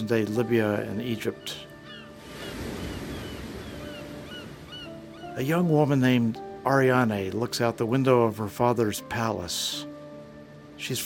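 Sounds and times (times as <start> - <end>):
speech: 0.0 - 1.7, 5.4 - 9.9, 10.8 - 11.0
ocean waves crashing: 0.0 - 8.7.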